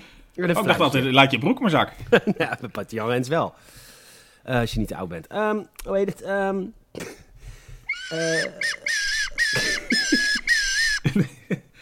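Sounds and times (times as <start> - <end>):
speech: 0.4 - 7.2, 8.1 - 9.8, 11.2 - 11.4
plastic whistle blown in buzzy wavering toots: 7.9 - 11.0
laughter-like voice sounds: 8.1 - 11.7.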